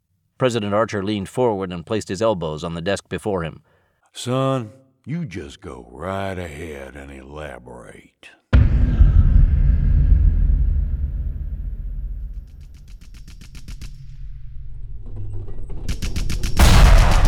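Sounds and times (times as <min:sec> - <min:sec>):
speech: 0:00.4 - 0:09.0
loud blast: 0:08.6 - 0:13.1, 0:16.6 - 0:17.2
automatic gunfire: 0:16.0 - 0:17.2
artillery shell explosion: 0:16.5 - 0:17.2.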